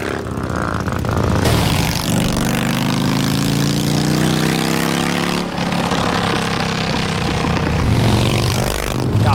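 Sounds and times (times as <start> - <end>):
motorcycle with open exhaust pipe and muffler removed roaring: 0.0 - 9.3.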